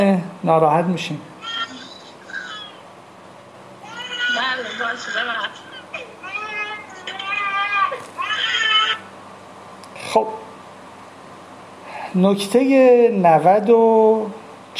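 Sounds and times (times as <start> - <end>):
speech: 0.0 - 1.3, 10.1 - 10.4, 12.1 - 14.7
baby crying: 1.4 - 2.8, 3.8 - 9.1.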